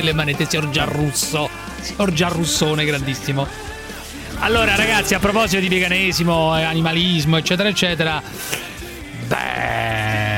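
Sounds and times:
speech: 0.0 - 3.8, 4.4 - 8.7
sheep bleating: 9.2 - 10.3.

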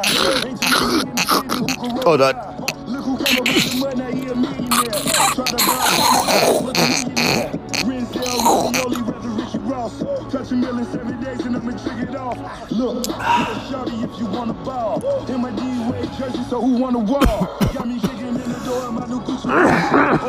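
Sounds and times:
speech: 0.0 - 1.4, 2.0 - 2.6, 9.9 - 20.2
coughing and throat clearing: 0.0 - 4.0, 4.6 - 9.1, 17.1 - 20.2
strained breaths: 12.5 - 14.0, 18.3 - 19.0.

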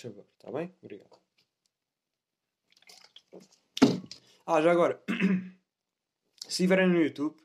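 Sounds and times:
speech: 0.0 - 1.2, 4.5 - 5.6, 6.5 - 7.4
water dripping: 2.6 - 4.4
splashy gulp of water: 2.7 - 4.2
person drinking water: 2.7 - 4.3.

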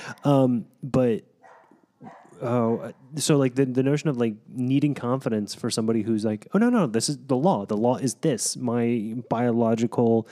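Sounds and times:
speech: 0.1 - 1.3, 2.0 - 10.3
neighbor's dogs barking: 1.4 - 2.4.

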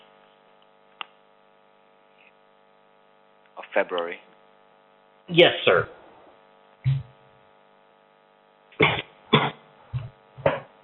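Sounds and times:
steady low electrical hum: 0.0 - 10.8
speech: 3.7 - 4.3, 5.3 - 6.0
person coughing in short harsh bursts: 8.8 - 9.7.

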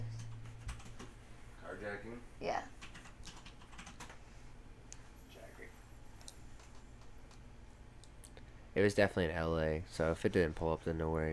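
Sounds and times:
speech: 1.8 - 2.8, 8.8 - 11.3
typing on a computer keyboard: 2.8 - 4.2, 6.6 - 7.4.

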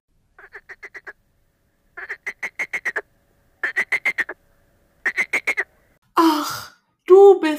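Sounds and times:
frog croaking: 0.4 - 1.2, 2.0 - 4.4, 5.0 - 5.7.

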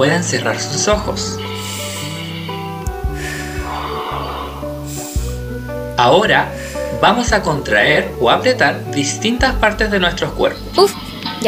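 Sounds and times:
speech: 0.0 - 1.6, 6.0 - 11.4
soft sustained instrumental music: 0.0 - 11.4
deep breath in through the nose and out through the mouth: 1.4 - 5.6, 6.5 - 7.0.

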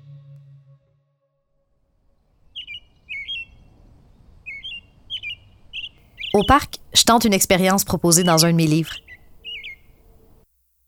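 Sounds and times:
American robin singing: 2.5 - 3.8, 4.4 - 10.4
speech: 6.4 - 9.1.

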